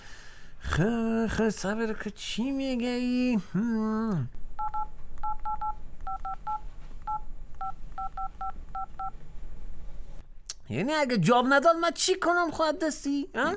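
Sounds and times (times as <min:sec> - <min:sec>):
steady low hum: 0:00.0 - 0:13.5
speech: 0:00.8 - 0:04.4, 0:10.7 - 0:13.5
telephone keypad dialing beeps: 0:04.6 - 0:09.1.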